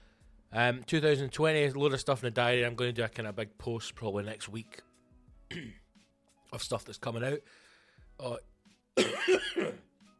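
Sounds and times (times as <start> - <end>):
speech: 0.5 - 4.9, 5.5 - 5.8, 6.5 - 7.6, 8.2 - 9.9
man coughing: 5.5 - 5.9, 9.0 - 9.9
throat clearing: 5.5 - 5.9, 9.0 - 9.9.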